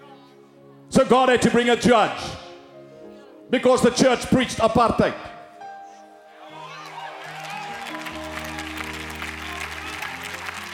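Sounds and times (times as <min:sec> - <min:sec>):
speech: 0:01.0 - 0:02.4, 0:03.5 - 0:05.3
large audience applause: 0:06.5 - 0:10.7.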